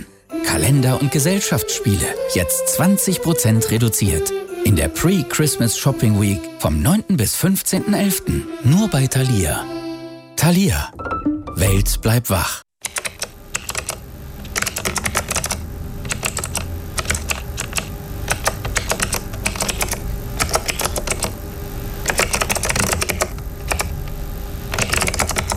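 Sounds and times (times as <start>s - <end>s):
speech: 0.4s - 9.8s, 10.4s - 12.6s
typing on a computer keyboard: 12.8s - 21.3s, 22.1s - 23.9s, 24.7s - 25.5s.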